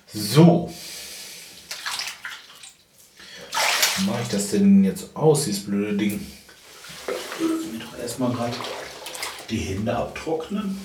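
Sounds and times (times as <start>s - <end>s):
speech: 0.1s - 0.9s, 4.2s - 6.4s, 7.4s - 8.8s, 9.5s - 10.8s
bath water splashing in a bathtub as someone gets out: 1.6s - 4.6s, 6.6s - 10.8s.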